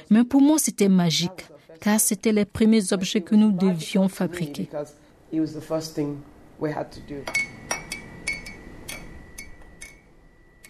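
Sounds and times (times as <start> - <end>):
speech: 0.1 - 7.6
teacup clinking against its saucer while sipping tea: 7.2 - 10.0.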